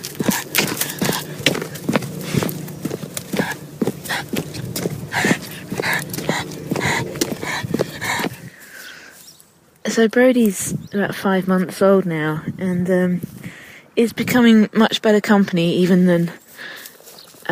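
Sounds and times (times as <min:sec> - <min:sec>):
excited border collie puppy panting: 0:00.0 - 0:08.6
speech: 0:10.0 - 0:13.3, 0:14.0 - 0:16.4.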